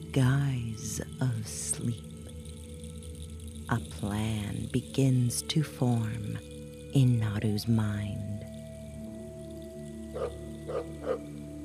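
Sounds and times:
speech: 0.2s - 2.2s, 3.7s - 8.4s, 10.2s - 11.2s
distant joyful barks: 10.2s - 11.2s.

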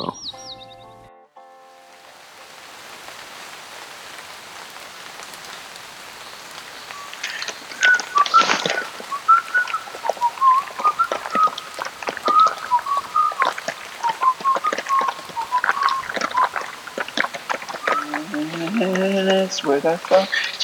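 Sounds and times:
rain falling: 1.8s - 20.6s
whistling bird-like chirps: 6.8s - 19.1s, 20.1s - 20.6s
speech: 19.8s - 20.6s.

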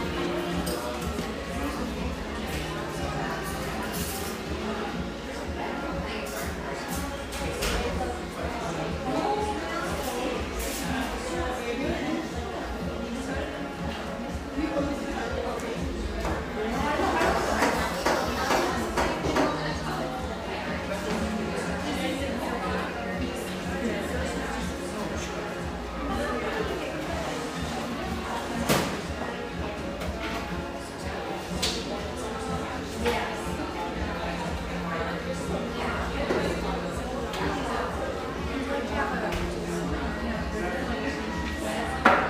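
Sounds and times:
overlapping conversation in a busy neighborhood espresso shop in Portland Oregon: 0.0s - 42.2s.

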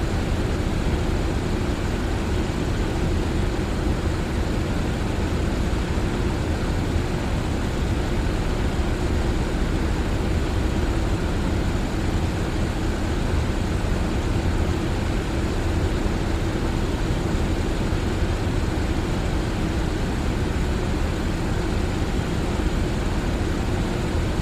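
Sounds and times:
fan white noise: 0.0s - 24.4s.

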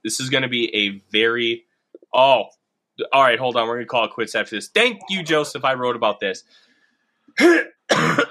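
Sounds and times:
speech: 0.0s - 6.6s, 7.4s - 8.2s
rough raspy throat clearing: 7.4s - 8.2s.

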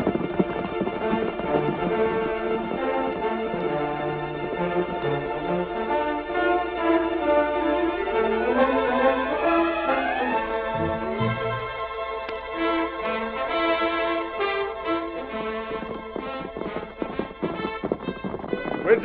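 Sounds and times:
horse hooves galloping: 0.0s - 19.0s
band playing dramatic music: 0.5s - 19.0s.

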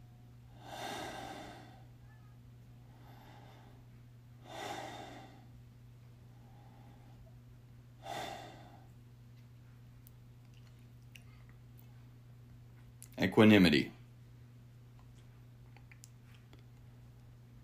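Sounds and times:
faint steady hum: 0.0s - 17.6s
person taking slow deep heavy breaths: 0.5s - 2.0s, 2.8s - 5.5s, 8.0s - 8.9s
speech: 13.2s - 14.0s.

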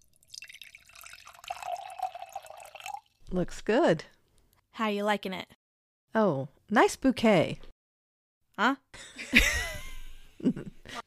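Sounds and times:
red wine pouring into a glass: 0.0s - 3.3s
speech: 3.3s - 4.2s, 4.8s - 7.7s, 8.6s - 9.6s.

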